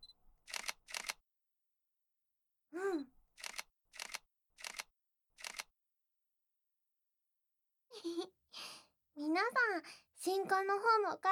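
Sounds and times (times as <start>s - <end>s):
camera shutter bursts taking photos of someone posing: 0.5s - 1.2s, 3.4s - 4.9s, 5.4s - 5.7s
speech: 9.7s - 11.3s.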